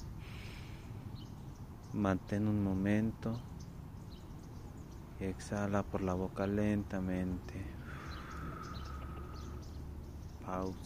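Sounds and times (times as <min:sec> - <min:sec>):
deep inhale through the nose: 0:00.2 - 0:01.0, 0:07.8 - 0:09.8
speech: 0:02.0 - 0:03.5, 0:05.2 - 0:07.8, 0:10.5 - 0:10.8.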